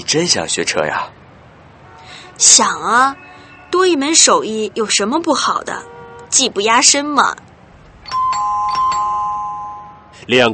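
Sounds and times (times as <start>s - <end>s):
speech: 0.1s - 1.2s, 2.4s - 7.5s, 10.3s - 10.5s
doorbell chime ringing: 8.0s - 10.1s.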